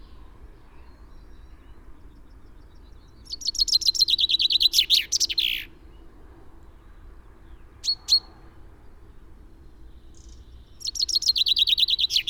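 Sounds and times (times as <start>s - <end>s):
common chaffinch Fringilla coelebs song: 0.0s - 6.0s, 7.6s - 8.4s, 9.8s - 12.2s.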